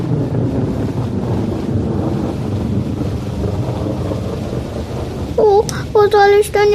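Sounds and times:
heavy rain pouring: 0.0 - 6.7
speech: 6.1 - 6.7.

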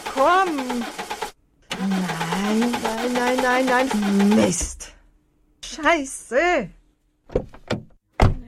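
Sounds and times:
car engine cranking but failing to start: 0.0 - 4.8
speech: 0.2 - 1.1, 1.8 - 4.9, 5.8 - 6.8.

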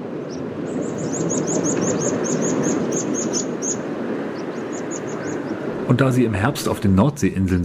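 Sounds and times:
continuous broadband noise: 0.0 - 7.6
meadow pipits calling while migrating south in autumn over a North Sea island: 0.3 - 5.7
speech: 5.9 - 7.6.

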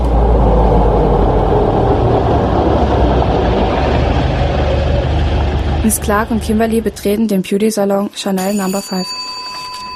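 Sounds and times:
car interior engine and road noise rumble: 0.0 - 7.2
speech: 5.9 - 9.3.

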